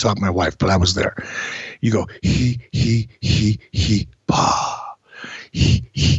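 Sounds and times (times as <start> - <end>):
speech: 0.0 - 4.7, 5.5 - 6.1
man doing Lamaze breathing exercise in quick breathy puffs: 1.2 - 1.8, 5.0 - 5.6.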